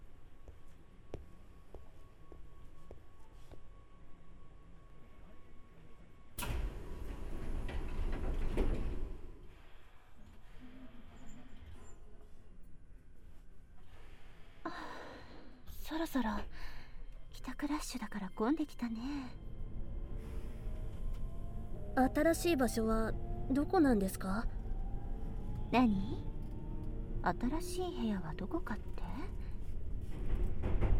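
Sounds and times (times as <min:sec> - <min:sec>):
steady hum of commuter train interior: 0:00.0 - 0:30.9
commuter train sliding doors opening with a hiss of air: 0:06.4 - 0:09.8
speech: 0:15.9 - 0:16.8, 0:17.4 - 0:19.4, 0:22.0 - 0:24.6, 0:25.7 - 0:26.3, 0:27.2 - 0:29.1.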